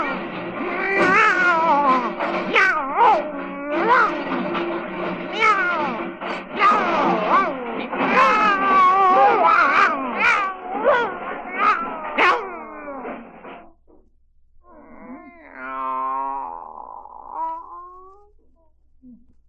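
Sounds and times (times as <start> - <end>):
several cats meowing and caterwauling: 0.0 - 4.2, 5.3 - 6.0, 6.6 - 13.2, 14.8 - 18.2.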